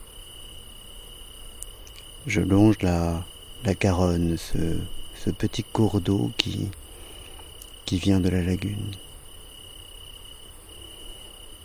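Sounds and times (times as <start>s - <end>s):
chorus of crickets trilling at night: 0.0s - 11.6s
faint low rumble: 1.7s - 9.3s
speech: 2.2s - 6.8s, 7.9s - 9.1s.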